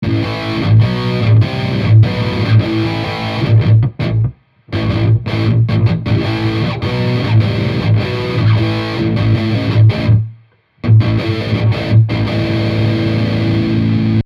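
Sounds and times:
distorted music bridge: 0:00.0 - 0:14.2.

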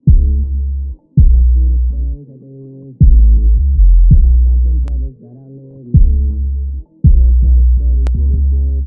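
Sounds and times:
filtered 808 beat: 0:00.0 - 0:00.6, 0:01.2 - 0:01.7, 0:03.0 - 0:04.8, 0:06.0 - 0:08.5.

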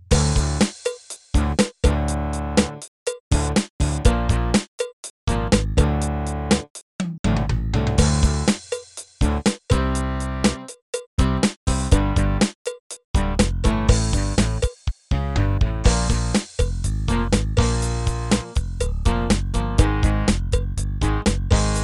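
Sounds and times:
rock music on a Microsoft GS wavetable synth: 0:00.1 - 0:00.7, 0:01.4 - 0:04.6, 0:05.3 - 0:06.7, 0:07.4 - 0:08.6, 0:09.2 - 0:12.5, 0:13.2 - 0:21.7.

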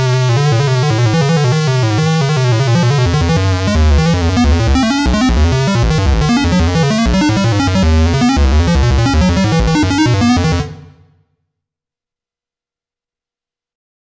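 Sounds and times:
King Korg synthesizer joystick effects: 0:00.1 - 0:11.2.

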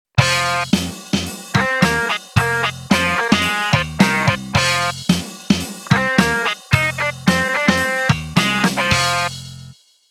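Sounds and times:
Casio keyboard drum sounds: 0:00.2 - 0:09.6
Casio SA 80 keyboard song with drums, bass and guitar sounds: 0:01.6 - 0:05.0, 0:05.8 - 0:09.3.

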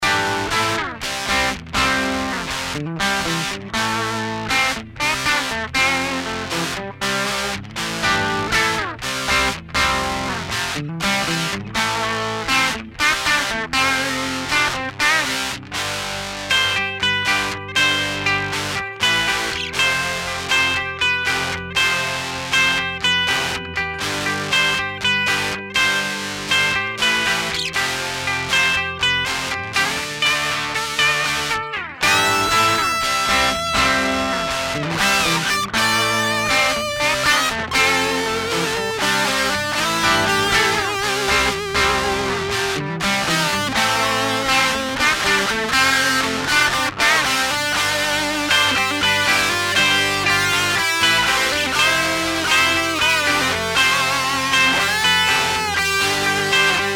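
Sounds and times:
reamped electric guitar through amp loadbox, clean, crunch and lead tones: 0:00.0 - 0:56.9.

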